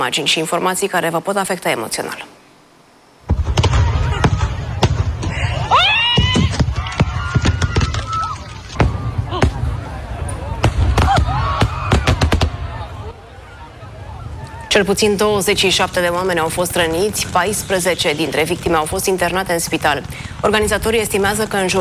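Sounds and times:
speech: 0:00.0 - 0:02.4, 0:14.8 - 0:21.7
fireworks bursting with bangs and cracks near a crowd: 0:03.2 - 0:13.1, 0:14.2 - 0:21.7
crowd screaming and shouting: 0:05.3 - 0:14.7.

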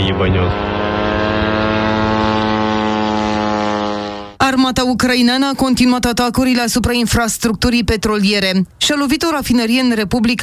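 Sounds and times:
attack drone propeller buzzing overhead: 0:00.0 - 0:04.4
speech: 0:00.1 - 0:00.8, 0:04.5 - 0:10.4.

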